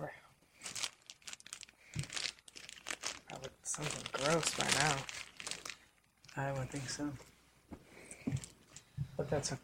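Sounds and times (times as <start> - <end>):
plastic bag crinkling: 0.4 - 7.3, 8.3 - 8.9
speech: 3.8 - 5.1, 6.4 - 7.3, 9.2 - 9.6.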